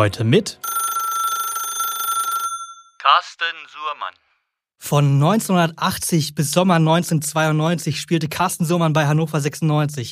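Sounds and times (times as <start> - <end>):
speech: 0.0 - 0.7, 3.1 - 10.0
loud telephone bell ringing: 0.6 - 3.0.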